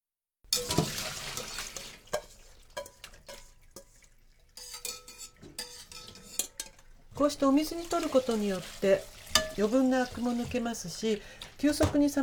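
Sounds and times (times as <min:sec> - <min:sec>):
slotted metal skimmer clinking against the pot: 0:00.5 - 0:01.0, 0:01.8 - 0:04.0, 0:04.6 - 0:07.0, 0:09.3 - 0:09.7
slotted metal skimmer scraping and clattering, lifting spinach into cold water: 0:00.5 - 0:12.2
water splashing as blanched spinach is lifted into cold water: 0:00.6 - 0:04.9, 0:07.4 - 0:12.2
speech: 0:07.2 - 0:12.2.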